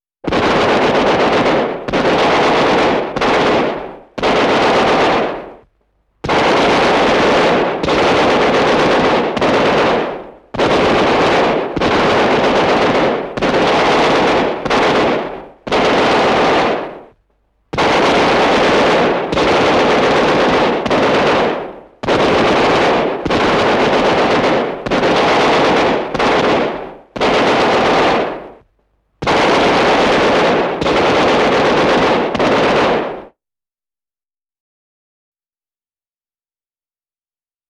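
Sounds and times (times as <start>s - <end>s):
machine gun firing: 0.3s - 33.4s.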